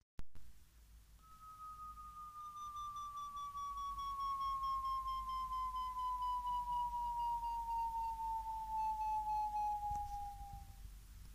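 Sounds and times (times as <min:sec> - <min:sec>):
linear downward chirp tone: 0:01.2 - 0:10.8.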